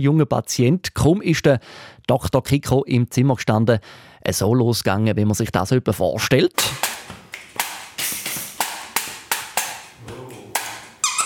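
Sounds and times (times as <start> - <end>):
speech: 0.0 - 6.9
stomping beat of sharp loud hits: 6.6 - 11.1
brief squeak: 11.0 - 11.2.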